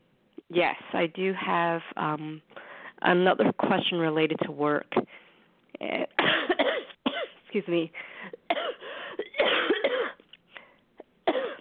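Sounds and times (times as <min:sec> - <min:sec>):
speech: 0:00.5 - 0:05.2, 0:05.8 - 0:06.4, 0:07.5 - 0:08.1
harsh coughing fit: 0:06.2 - 0:07.4, 0:08.2 - 0:10.2, 0:11.2 - 0:11.5.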